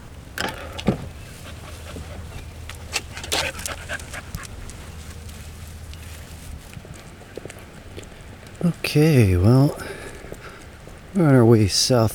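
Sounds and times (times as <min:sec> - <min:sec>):
dog panting: 0:01.3 - 0:05.1
speech: 0:08.7 - 0:09.9, 0:11.2 - 0:12.1.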